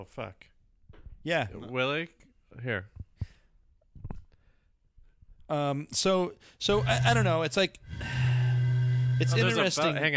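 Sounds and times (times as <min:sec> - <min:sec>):
speech: 0:00.0 - 0:00.5, 0:01.2 - 0:03.0, 0:05.5 - 0:08.3, 0:09.2 - 0:10.1
low steady buzzing fart: 0:06.7 - 0:09.8.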